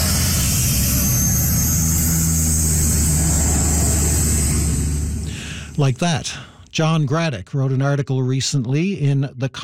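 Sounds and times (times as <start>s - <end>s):
water bomber propeller plane flying overhead: 0.0s - 6.6s
speech: 5.8s - 9.6s.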